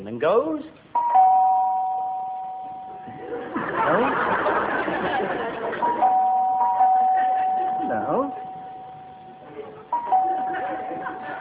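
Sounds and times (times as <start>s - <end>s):
speech: 0.0s - 0.8s, 3.8s - 6.1s
house doorbell ringing with a single electronic tone: 1.0s - 3.1s, 5.8s - 11.3s
laughter: 3.0s - 8.4s, 9.4s - 11.3s.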